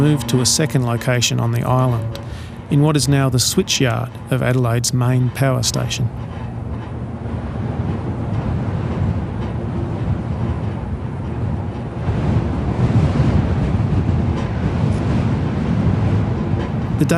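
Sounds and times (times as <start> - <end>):
speech: 0.0 - 6.5, 17.0 - 17.1
power lines singing in the wind: 0.0 - 11.6
strong wind from the Southern Ocean roaring across an exposed island: 0.0 - 17.1.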